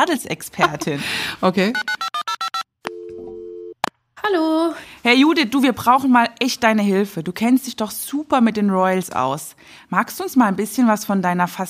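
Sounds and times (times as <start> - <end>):
speech: 0.0 - 2.1, 4.2 - 11.6
laughter: 0.6 - 1.0
telephone ringing tone while placing a call: 1.8 - 3.8.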